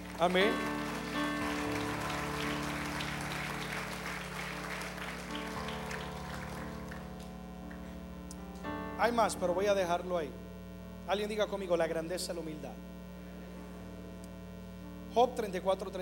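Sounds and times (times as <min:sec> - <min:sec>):
crowd applauding: 0:00.0 - 0:08.0
speech: 0:00.2 - 0:01.2, 0:09.1 - 0:10.5, 0:11.1 - 0:12.9, 0:15.1 - 0:15.9.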